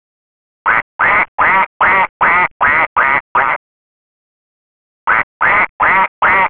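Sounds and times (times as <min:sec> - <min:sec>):
duck giving rasping quacks: 0:00.7 - 0:03.6, 0:05.1 - 0:06.4.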